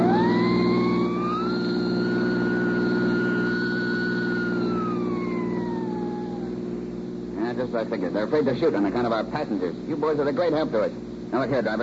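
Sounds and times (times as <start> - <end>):
police siren wailing: 0.0 - 6.8
speech: 7.6 - 11.8.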